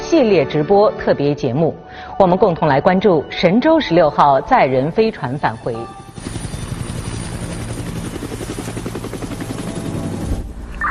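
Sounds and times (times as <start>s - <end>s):
speech: 0.1s - 6.4s
deep helicopter engine drone: 4.2s - 10.8s
helicopter rotor blades thumping: 5.0s - 10.8s.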